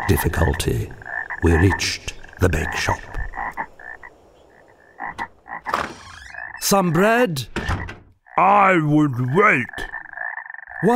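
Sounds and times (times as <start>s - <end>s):
dense chorus of frogs croaking: 0.0s - 10.9s
speech: 0.1s - 3.1s, 6.7s - 7.7s, 8.4s - 9.8s, 10.8s - 10.9s.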